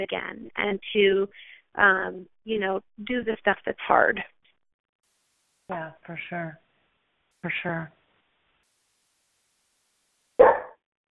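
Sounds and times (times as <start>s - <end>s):
speech: 0.0s - 4.4s, 5.7s - 6.6s, 7.4s - 8.0s
dog barking sharply: 10.4s - 10.8s.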